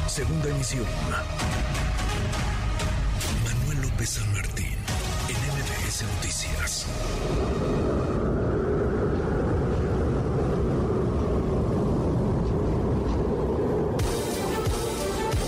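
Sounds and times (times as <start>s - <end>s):
speech: 0.2s - 2.4s, 3.8s - 8.5s
strong wind roaring during winter storm: 6.5s - 15.3s.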